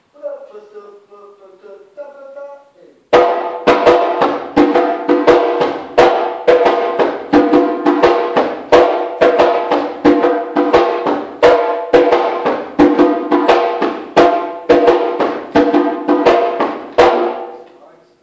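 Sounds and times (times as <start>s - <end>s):
djembe: 3.1s - 17.6s.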